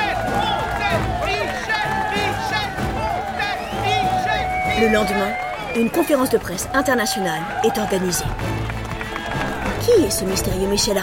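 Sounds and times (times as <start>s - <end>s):
overlapping crowd shouts of a man's name: 0.0s - 8.1s
frenzied dense crowd roaring: 0.0s - 11.0s
shrill crowd whistles: 0.3s - 6.5s
speech: 4.8s - 8.7s, 9.8s - 11.0s.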